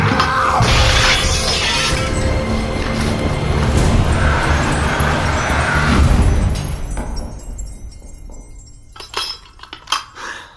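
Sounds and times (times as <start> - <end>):
mirror shattering: 0.1 - 3.5
falling mirror glass shards tinkling: 0.6 - 10.4.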